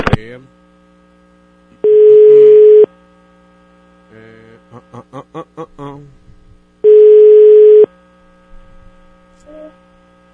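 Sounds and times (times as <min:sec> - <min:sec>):
speech: 0:00.2 - 0:00.6, 0:04.9 - 0:05.8
telephone ringing tone over a phone line while placing a call: 0:01.8 - 0:02.9, 0:06.8 - 0:07.9.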